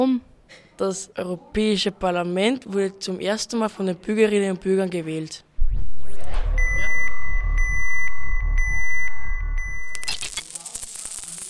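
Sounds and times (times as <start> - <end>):
speech: 0.0 - 5.9
pulsing low beat: 5.6 - 9.9
steady electronic tone: 5.6 - 9.9
Euro coins dropping: 9.9 - 11.4.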